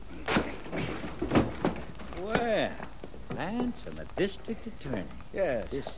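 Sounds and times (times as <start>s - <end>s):
door being forced open with heavy thuds and cracking impacts: 0.2s - 2.7s
speech: 2.2s - 5.9s.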